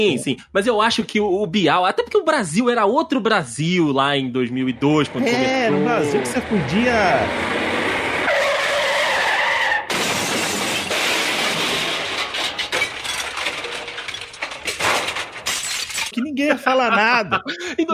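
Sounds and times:
speech: 0:00.0 - 0:07.6, 0:16.6 - 0:17.9
laughter: 0:05.0 - 0:06.8, 0:16.7 - 0:17.9
vehicle skidding with a long tire squeal: 0:06.1 - 0:09.9
clattering banging impacts of a truck: 0:09.9 - 0:16.2.

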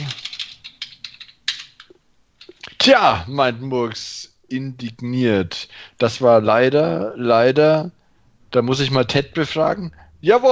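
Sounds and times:
rapid computer keyboard typing: 0:00.0 - 0:02.8
speech: 0:02.8 - 0:10.5.

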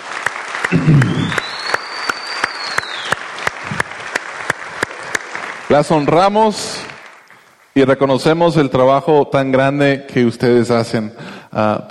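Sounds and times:
crowd applauding: 0:00.0 - 0:07.7
speech: 0:00.7 - 0:01.5, 0:05.7 - 0:06.9, 0:07.8 - 0:11.9
high whistle: 0:00.8 - 0:03.2.

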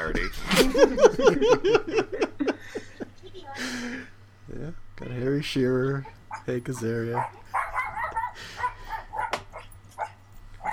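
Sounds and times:
laughter: 0:00.0 - 0:03.7
low steady hum: 0:00.0 - 0:10.7
speech: 0:05.4 - 0:07.4
dog barking and yipping outside: 0:06.0 - 0:10.7.

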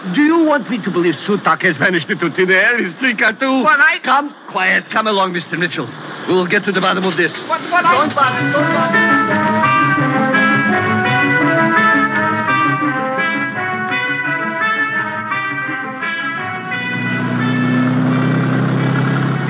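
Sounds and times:
speech: 0:00.0 - 0:09.8
car engine revving: 0:07.9 - 0:19.4.

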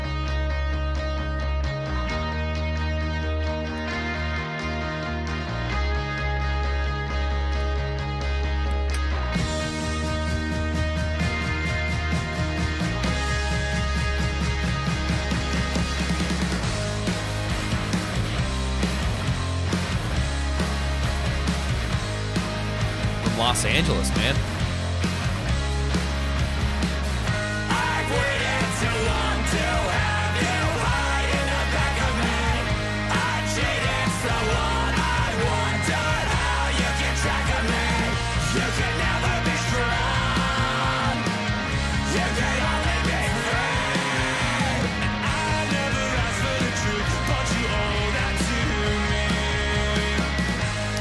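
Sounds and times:
loud dense rock track: 0:00.0 - 0:50.9
speech: 0:23.5 - 0:24.5
clean sung vocals: 0:27.7 - 0:41.2, 0:42.0 - 0:50.1.

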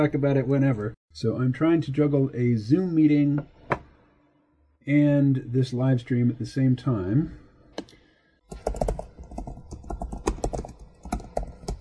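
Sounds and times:
speech: 0:00.0 - 0:03.6, 0:04.8 - 0:07.9
typing a message on a computer keyboard: 0:08.5 - 0:11.7.

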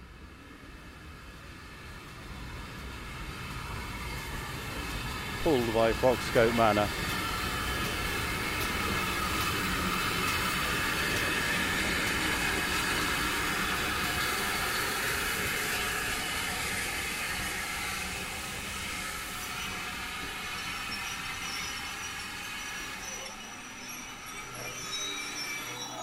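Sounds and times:
steam train rolling into a station: 0:00.0 - 0:26.0
speech: 0:05.4 - 0:07.2.

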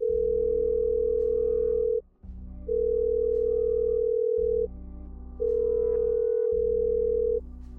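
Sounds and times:
phone ringback tone in long steady beeps: 0:00.0 - 0:02.0, 0:02.7 - 0:04.7, 0:06.1 - 0:07.4
low hum: 0:00.0 - 0:07.7.

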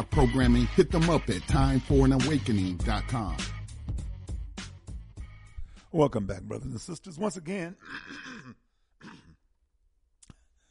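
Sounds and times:
speech: 0:00.1 - 0:03.6, 0:05.9 - 0:09.2
person clearing throat at a microphone: 0:07.8 - 0:09.4.

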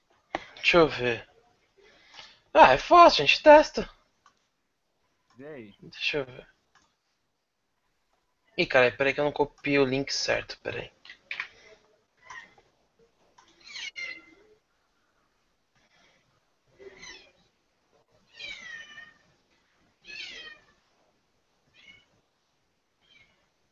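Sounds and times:
speech: 0:00.6 - 0:01.3, 0:02.6 - 0:04.0, 0:05.4 - 0:06.5, 0:08.6 - 0:11.0
pet cat meowing loudly behind a closed bedroom door: 0:18.3 - 0:19.2, 0:20.0 - 0:20.8.

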